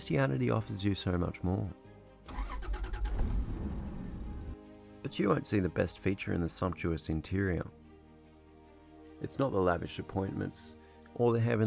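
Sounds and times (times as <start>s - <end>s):
speech: 0.0s - 1.8s, 5.0s - 7.8s, 9.2s - 11.6s
luxury car engine starting: 2.3s - 4.6s.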